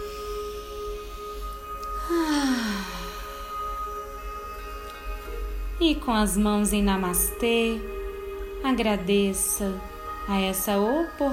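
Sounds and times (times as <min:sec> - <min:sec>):
faint sustained tones: 0:00.0 - 0:11.3
slow deep breath in and out during a guided breathing exercise: 0:00.1 - 0:04.2
speech: 0:05.8 - 0:07.9, 0:08.6 - 0:11.3.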